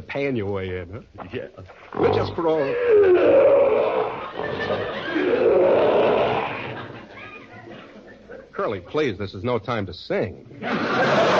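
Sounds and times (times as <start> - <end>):
speech: 0.1 - 6.0, 8.6 - 11.3
lion roaring in a cage: 1.9 - 7.0
laughter: 3.9 - 8.6, 10.5 - 11.3.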